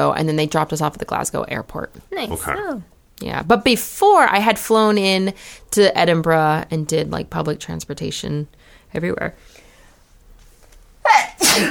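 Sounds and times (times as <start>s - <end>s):
speech: 0.0s - 9.6s, 11.1s - 11.6s
person sneezing: 2.2s - 2.6s, 11.0s - 11.6s.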